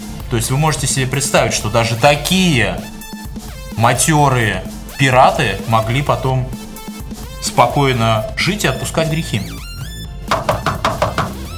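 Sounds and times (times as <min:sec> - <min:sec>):
speech: 0:00.3 - 0:06.6, 0:07.4 - 0:09.6
knocking on a door: 0:10.3 - 0:11.5.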